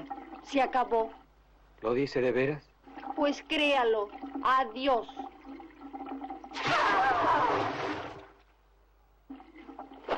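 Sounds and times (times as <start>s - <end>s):
speech: 0.4s - 1.2s, 1.8s - 5.2s
cold water sloshing and splashing as a person bathes in a barrel: 2.8s - 8.5s, 9.3s - 10.1s.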